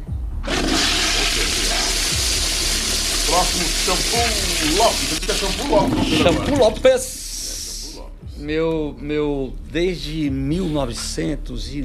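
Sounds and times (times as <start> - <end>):
toilet flushing: 0.4 - 7.0
speech: 3.4 - 7.2, 8.4 - 11.8.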